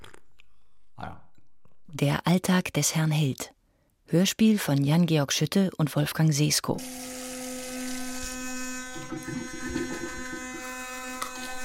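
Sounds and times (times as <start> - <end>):
speech: 1.9 - 7.2, 9.1 - 10.2
electric toothbrush buzzing: 6.8 - 11.6
toothbrush scrubbing noises: 8.8 - 11.6.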